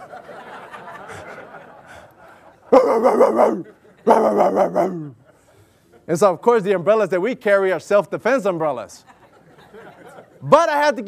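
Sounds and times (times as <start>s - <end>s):
laughter: 0.0s - 6.1s, 9.0s - 10.5s
speech: 2.7s - 5.0s, 6.1s - 9.1s, 10.4s - 11.0s
pit bull mix dog barking: 2.8s - 5.2s.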